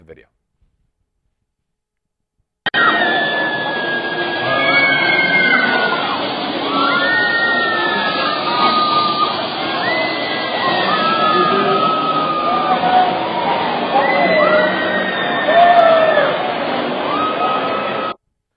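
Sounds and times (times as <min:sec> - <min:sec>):
crowd cheering and shouting: 0:02.7 - 0:18.2
woman screaming while being spun: 0:02.8 - 0:16.4.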